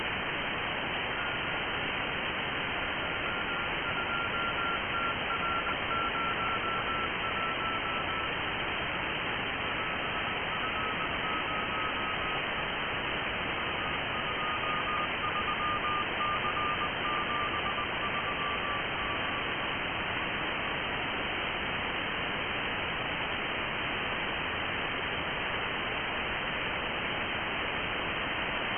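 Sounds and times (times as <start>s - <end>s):
HAVELSAT satellite 436836630Hz AF radio signal: 0.0s - 28.7s.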